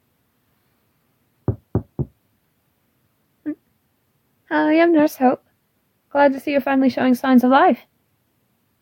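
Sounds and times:
gentle knocks on a hospital room door: 1.5 - 2.2
speech: 4.5 - 5.4, 6.1 - 7.9.

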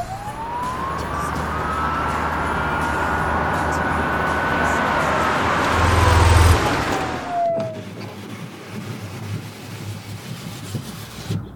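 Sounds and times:
car engine rumbling and idling: 0.0 - 7.9
police siren wailing: 0.0 - 8.0.

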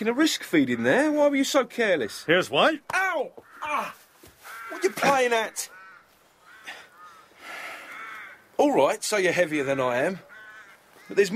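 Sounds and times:
speech: 0.0 - 4.0, 4.7 - 5.8, 8.6 - 10.3, 11.1 - 11.3
harsh raspy caw-like bird calls: 0.0 - 11.3.

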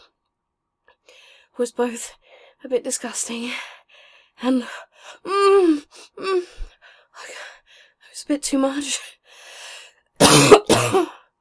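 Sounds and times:
speech: 1.6 - 3.8, 4.4 - 7.4, 8.2 - 9.2, 10.4 - 11.2
harsh loud coughing: 10.2 - 11.2.

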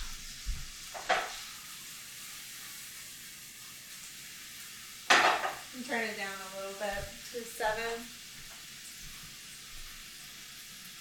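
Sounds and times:
scraping of stirring food in a frying pan: 0.0 - 4.6
food sizzling in a frying pan: 0.0 - 10.9
speech: 5.8 - 8.2.

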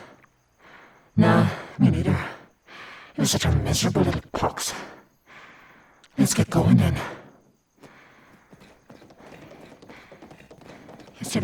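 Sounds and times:
speech: 1.2 - 2.3, 3.2 - 5.0, 6.2 - 7.2
horse hooves clip-clopping while ridden: 8.2 - 11.4.

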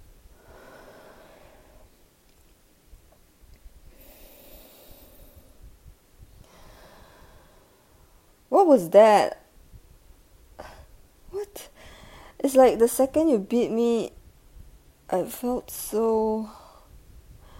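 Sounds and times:
person taking deep breaths: 0.3 - 2.0, 3.9 - 5.6, 6.4 - 8.2, 11.8 - 12.4, 16.5 - 17.5
speech: 8.6 - 9.4, 12.4 - 14.2, 15.1 - 16.6.

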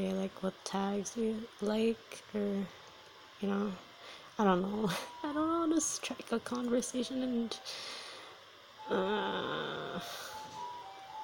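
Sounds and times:
speech: 0.0 - 2.8, 3.4 - 8.0, 8.9 - 10.3
ice cream vendor tricycle jingle: 4.4 - 7.9, 8.8 - 11.2.

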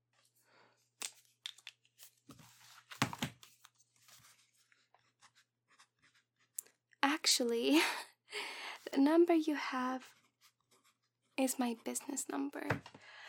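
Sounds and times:
pen scratching on paper writing down a phone number: 5.0 - 6.6, 10.0 - 12.2
speech: 7.4 - 10.2, 11.4 - 13.1.

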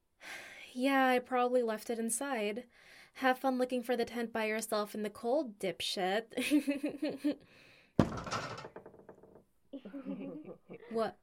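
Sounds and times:
speech: 0.8 - 8.4, 10.0 - 11.2
door slamming shut: 8.0 - 8.9.

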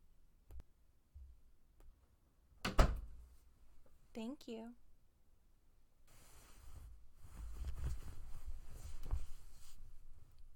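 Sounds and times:
bathroom door swinging shut with a thump and rattle: 2.6 - 3.1
speech: 4.2 - 4.8
soft handling noises: 6.1 - 10.5.

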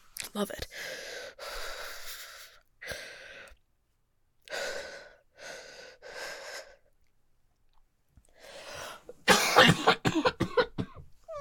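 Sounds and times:
speech: 0.4 - 1.5
person coughing breathily: 9.2 - 11.0.

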